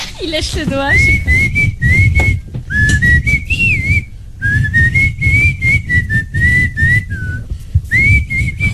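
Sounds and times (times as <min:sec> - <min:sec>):
speech: 0:00.2 - 0:01.6
person whistling a song melody: 0:01.0 - 0:08.7.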